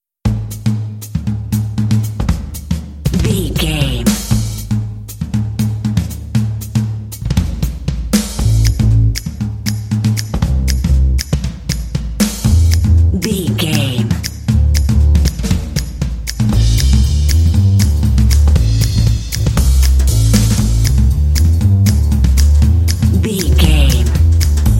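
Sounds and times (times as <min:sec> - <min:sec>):
jazzy beat: 0:00.3 - 0:24.7.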